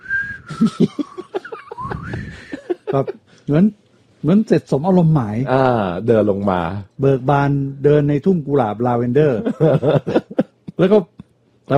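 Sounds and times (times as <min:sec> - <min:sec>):
person whistling a wavering high tune while walking: 0:00.0 - 0:02.8
laughter: 0:00.5 - 0:03.2, 0:09.3 - 0:10.8
speech: 0:00.6 - 0:01.1, 0:02.9 - 0:10.2, 0:10.8 - 0:11.1.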